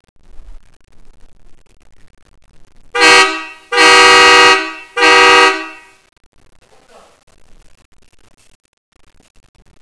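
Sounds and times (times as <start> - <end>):
air horn: 3.0 - 6.0.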